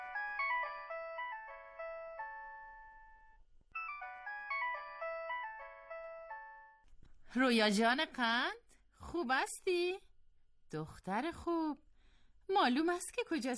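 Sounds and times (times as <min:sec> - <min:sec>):
bright electronic ringtone of an incoming call on a mobile phone: 0:00.0 - 0:06.8
speech: 0:07.3 - 0:10.1, 0:10.7 - 0:11.8, 0:12.5 - 0:13.5.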